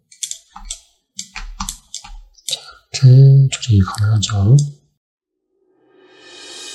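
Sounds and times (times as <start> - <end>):
T key and other keys on a computer keyboard pressed during 3D modelling: 0.1 - 2.6
speech: 3.0 - 4.8.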